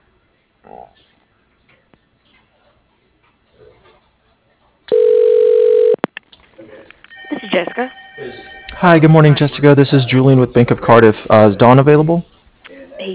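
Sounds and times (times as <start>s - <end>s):
speech: 0.6s - 1.1s, 7.6s - 12.3s
telephone ring tone over a narrow phone line: 4.9s - 6.0s, 7.1s - 9.0s.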